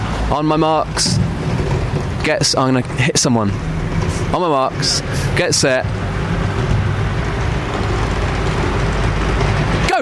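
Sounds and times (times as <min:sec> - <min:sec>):
dense road traffic going by with heavy low rumble: 0:00.0 - 0:10.0
speech: 0:00.3 - 0:01.2, 0:02.2 - 0:06.1.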